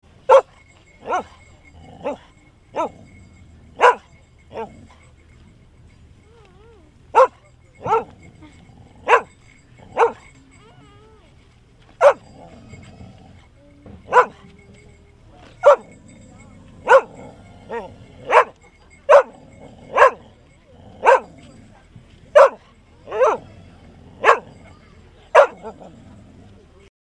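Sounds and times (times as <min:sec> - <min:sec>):
medium-sized dog barking: 0:00.3 - 0:01.4, 0:02.8 - 0:03.0, 0:03.8 - 0:04.7, 0:07.2 - 0:08.1, 0:09.0 - 0:09.4, 0:10.0 - 0:10.3, 0:12.0 - 0:12.3, 0:14.1 - 0:14.5, 0:15.6 - 0:16.0, 0:16.8 - 0:20.2, 0:21.0 - 0:21.4, 0:22.4 - 0:23.4, 0:24.2 - 0:24.6, 0:25.3 - 0:25.9.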